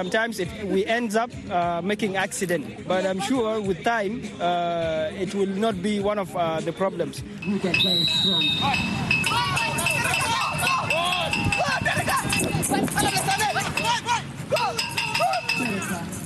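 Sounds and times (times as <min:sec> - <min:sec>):
speech: 0:00.0 - 0:09.6, 0:12.7 - 0:13.6
voices chattering and calling: 0:06.7 - 0:16.2
bell-fitted ball jingling and rattling: 0:07.4 - 0:16.2
blind football goal alarm high electronic tone: 0:07.5 - 0:11.7.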